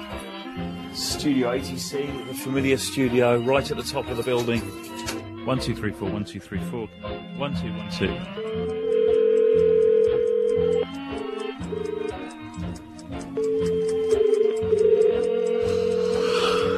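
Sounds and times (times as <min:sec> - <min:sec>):
speech: 0:01.0 - 0:08.8
faint regular ticking: 0:08.2 - 0:16.7
steady electronic telephone ringing tone for a call to a phone box: 0:08.7 - 0:10.8, 0:13.4 - 0:16.7.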